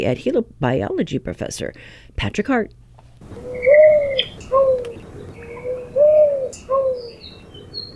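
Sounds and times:
speech: 0.0 - 3.8
mourning dove cooing: 3.2 - 7.9
faint chirps of other birds: 3.3 - 7.9.

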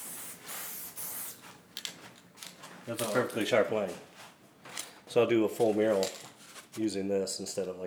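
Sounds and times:
aerosol spray paint can spraying along an edge: 0.0 - 1.4
speech: 2.9 - 4.1, 5.2 - 6.2, 6.8 - 7.8.

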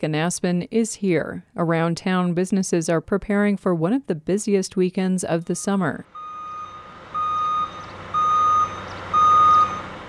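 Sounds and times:
speech: 0.0 - 6.2
large delivery truck low engine rumble: 6.0 - 10.0
large delivery truck backup alarm beeping: 6.1 - 10.0.

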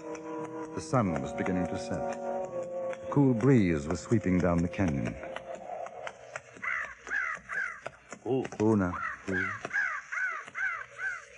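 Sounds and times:
speech: 0.8 - 2.3, 3.1 - 5.4, 8.3 - 9.7
crows cawing: 5.6 - 11.3.

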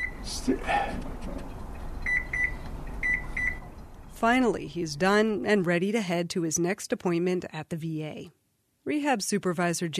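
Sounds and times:
oven timer buttons beeping while being programmed: 0.0 - 0.2, 2.0 - 3.7
speech: 0.4 - 1.5, 4.2 - 9.9.

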